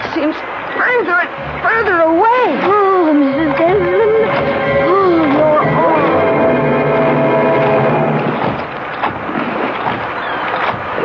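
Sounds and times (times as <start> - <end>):
churning rushing water from a sinking boat: 0.0 - 11.0
speech: 0.2 - 2.8
low droning hum: 0.4 - 8.8.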